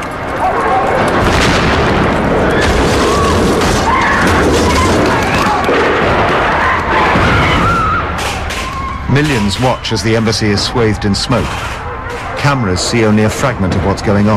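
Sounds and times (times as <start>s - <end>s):
raised voices and shouts: 0.0s - 1.3s, 2.2s - 14.3s
explosions during an embassy rescue operation: 0.0s - 9.6s
people screaming: 0.0s - 14.3s
gunfire during an embassy rescue operation: 0.6s - 9.8s
speech: 9.2s - 11.7s, 12.4s - 14.3s.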